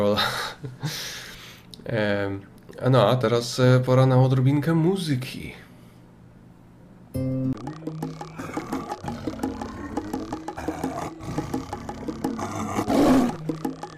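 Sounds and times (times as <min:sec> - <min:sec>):
speech: 0:00.0 - 0:01.2, 0:01.9 - 0:05.6
rich harmonic backing: 0:07.1 - 0:13.9
tiger roaring: 0:08.2 - 0:13.9.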